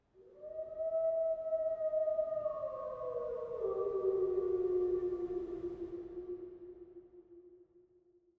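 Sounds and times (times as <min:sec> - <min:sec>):
wolf howling long, ambient: 0:00.3 - 0:05.6.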